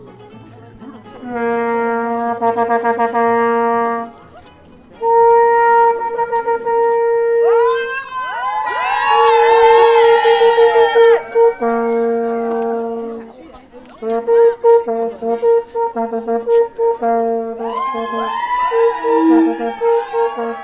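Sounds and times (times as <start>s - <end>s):
long steady horn-like blasts: 1.2s - 4.2s, 5.0s - 7.8s, 8.8s - 13.4s, 14.0s - 20.6s
crowd of protesters shouting and cheering at a strike rally: 7.4s - 12.8s, 17.6s - 20.6s.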